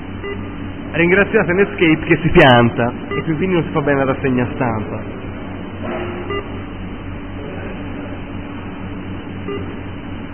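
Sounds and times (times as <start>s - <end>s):
steady hum: 0.0s - 10.3s
speech: 0.3s - 5.2s
short electronic message notification beeps: 3.1s - 3.4s, 6.3s - 6.5s.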